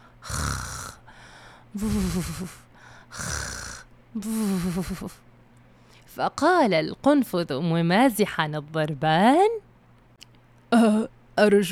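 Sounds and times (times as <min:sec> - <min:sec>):
voice imitating a polecat snoring: 0:00.2 - 0:01.1, 0:01.8 - 0:05.2
speech: 0:01.7 - 0:03.3, 0:04.1 - 0:05.3, 0:06.2 - 0:09.6, 0:10.7 - 0:11.7.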